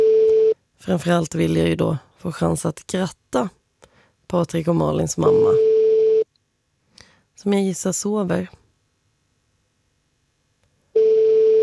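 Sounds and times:
steady single-pitch telephone call tone: 0.0s - 0.6s, 5.2s - 6.3s, 10.9s - 11.6s
speech: 0.8s - 3.6s, 4.3s - 5.7s, 7.4s - 8.6s.

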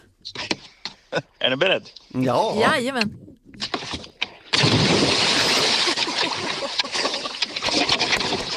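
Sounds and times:
speech: 0.2s - 3.7s
water churning and sloshing: 2.6s - 8.5s
person cannonballing off a dock into water: 3.6s - 8.5s.

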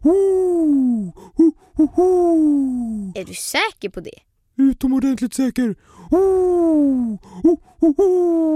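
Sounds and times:
speech: 0.0s - 0.5s, 3.2s - 8.5s
person's voice imitating an owl hooting: 0.0s - 3.2s, 6.0s - 8.5s.

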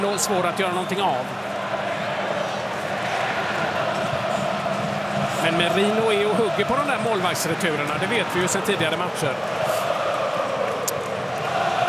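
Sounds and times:
speech: 0.0s - 1.6s, 5.4s - 9.8s
football supporters roaring in a large stadium: 0.0s - 11.8s.

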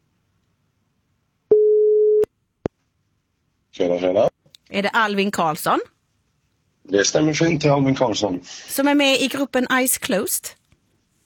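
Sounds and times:
telephone tone as a call connects: 1.5s - 2.3s
speech: 3.8s - 6.0s, 6.9s - 10.6s.

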